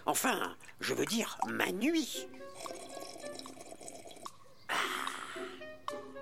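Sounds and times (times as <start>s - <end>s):
speech: 0.1s - 2.8s
hot chocolate pouring into a cup: 2.4s - 4.4s.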